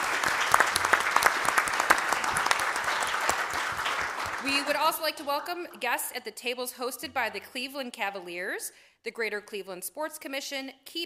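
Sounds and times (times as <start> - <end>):
applause from a sizeable audience: 0.0 - 5.5
speech: 4.5 - 11.0.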